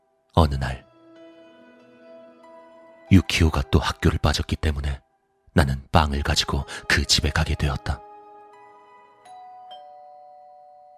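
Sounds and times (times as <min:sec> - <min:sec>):
speech: 0:00.4 - 0:00.9, 0:03.1 - 0:05.0, 0:05.6 - 0:08.0
doorbell ding-dong chime: 0:09.2 - 0:10.9.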